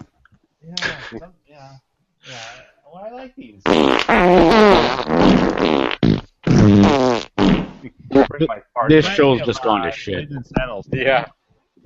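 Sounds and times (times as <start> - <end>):
speech: 0.7 - 6.0, 7.9 - 11.4
fart sounds: 3.6 - 8.5.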